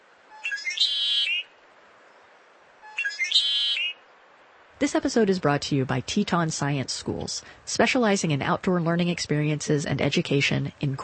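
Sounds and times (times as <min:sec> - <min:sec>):
birds singing bright rapid runs of high whistled notes: 0:00.3 - 0:02.2, 0:02.8 - 0:04.0
speech: 0:04.8 - 0:11.0.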